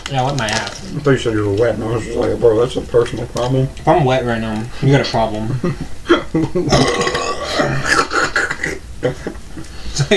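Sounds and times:
speech: 0.1s - 8.0s, 9.0s - 9.4s, 10.0s - 10.1s
long loud drawn-out burp: 6.7s - 8.6s.

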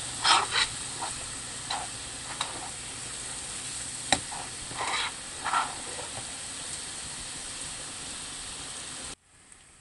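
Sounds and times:
ginger-garlic paste sizzling in a pan: 0.0s - 9.2s
stirring clicks and scrapes in a pan: 0.2s - 2.8s, 4.1s - 6.4s.

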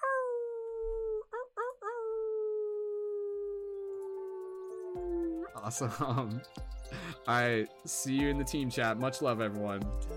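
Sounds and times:
person imitating a wolf howl: 0.0s - 5.6s
speech: 5.6s - 10.1s.

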